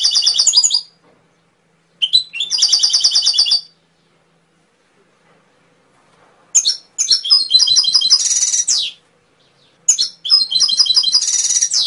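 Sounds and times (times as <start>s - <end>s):
canary song tutor recording: 0.0s - 4.6s, 6.5s - 11.8s.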